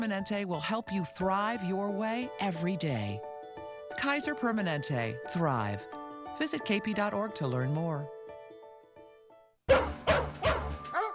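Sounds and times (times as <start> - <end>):
speech: 0.0 - 3.3, 3.9 - 8.2
dog barking: 9.7 - 11.1.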